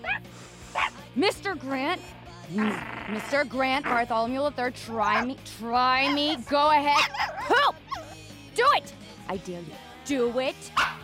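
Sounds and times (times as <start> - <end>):
dog yipping and yelping barks: 0.0 - 0.2, 0.8 - 1.0, 4.9 - 5.3, 6.0 - 8.2, 10.8 - 11.0
speech: 1.2 - 7.8, 8.6 - 10.9.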